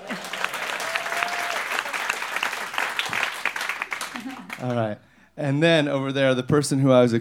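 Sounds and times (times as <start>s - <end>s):
scattered crowd noise: 0.0s - 4.6s
audience applause at a live band concert: 0.0s - 4.8s
speech: 4.6s - 7.1s.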